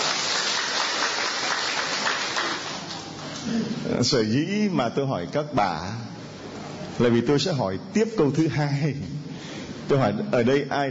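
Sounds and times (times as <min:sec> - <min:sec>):
church audience of women applauding: 0:00.0 - 0:03.1
speech: 0:03.5 - 0:06.1, 0:07.0 - 0:09.2, 0:09.9 - 0:10.8.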